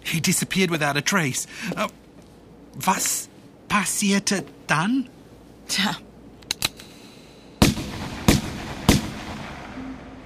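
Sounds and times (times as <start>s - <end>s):
speech: 0.1s - 2.1s, 2.8s - 6.0s
sharp loud gunshots: 7.6s - 9.8s.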